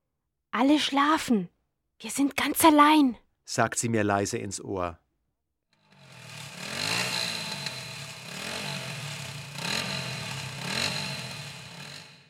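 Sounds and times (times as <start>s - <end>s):
speech: 0.6s - 5.0s
moped with a passenger ridden along a road at night: 5.9s - 12.2s.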